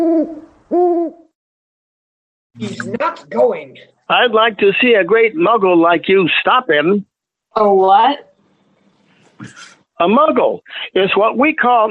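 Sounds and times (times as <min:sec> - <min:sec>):
owl hooting: 0:00.0 - 0:01.3
speech: 0:00.3 - 0:01.2, 0:02.6 - 0:08.3, 0:09.4 - 0:11.9.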